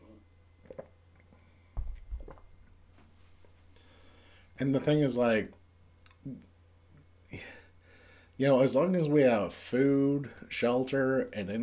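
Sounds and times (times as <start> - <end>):
soft mouth sounds of person drinking water: 0.0 - 3.9
person gulping water: 0.6 - 2.8
speech: 4.6 - 5.6, 6.2 - 6.5, 8.4 - 11.6.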